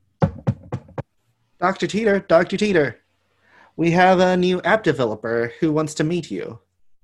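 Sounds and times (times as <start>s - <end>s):
knocking on a door: 0.2s - 1.0s
speech: 1.6s - 3.0s, 3.8s - 6.6s.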